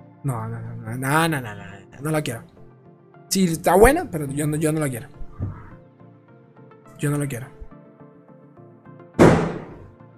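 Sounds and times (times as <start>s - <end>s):
speech: 0.2s - 2.5s, 3.3s - 5.2s, 7.0s - 7.6s
firecracker bursting outside: 9.2s - 9.9s.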